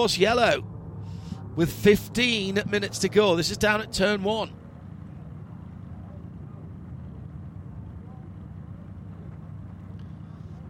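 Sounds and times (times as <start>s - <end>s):
speech: 0.0s - 0.7s, 1.6s - 4.6s
Mercedes race car AMG V8 engine idling at turn one: 0.0s - 10.6s.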